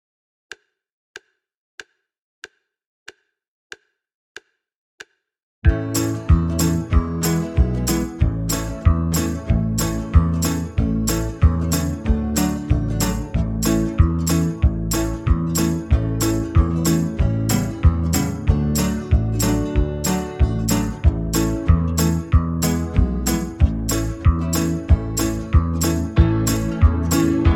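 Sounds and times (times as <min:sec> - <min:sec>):
fast banjo backing track: 0:05.7 - 0:27.5.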